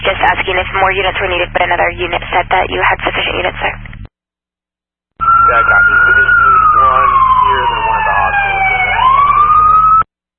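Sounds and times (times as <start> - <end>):
speech: 0.2 - 3.9, 5.2 - 7.7
emergency vehicle sirens wailing: 5.2 - 10.1.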